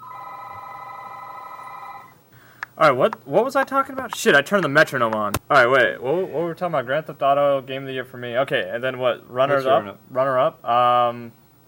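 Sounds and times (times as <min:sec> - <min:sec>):
telephone ringing with a continuous electronic tone: 0:00.0 - 0:02.2
speech: 0:02.8 - 0:11.4.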